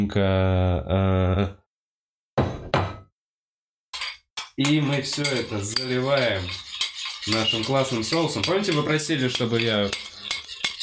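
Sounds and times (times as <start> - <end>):
speech: 0.0 - 1.6, 4.6 - 10.1
metal utensil clinking against a dish while preparing salad: 4.0 - 10.8.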